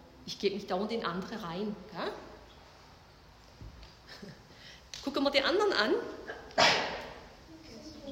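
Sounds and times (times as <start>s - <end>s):
speech: 0.3s - 2.3s, 5.0s - 6.7s
faint murmur: 6.0s - 8.1s
person sneezing: 6.3s - 7.2s.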